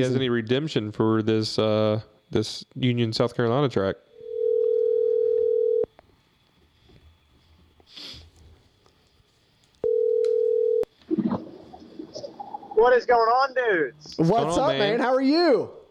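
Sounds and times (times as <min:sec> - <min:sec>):
speech: 0:00.0 - 0:04.1, 0:12.8 - 0:15.8
phone ringback tones on an outgoing call: 0:04.1 - 0:05.9, 0:09.8 - 0:10.9
faint sniff: 0:07.8 - 0:08.6.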